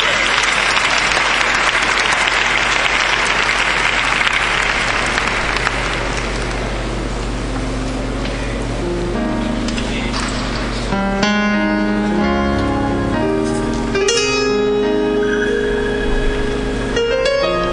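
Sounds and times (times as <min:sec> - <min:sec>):
crowd applauding: 0:00.0 - 0:07.1
low steady hum: 0:00.0 - 0:17.7.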